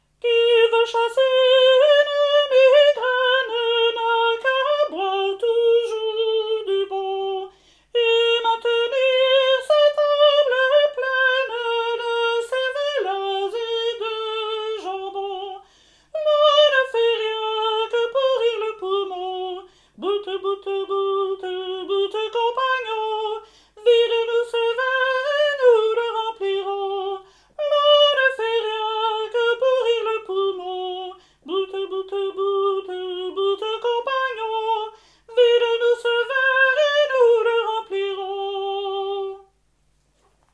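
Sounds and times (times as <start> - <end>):
sopranos singing a drinking song: 0.2 - 39.5.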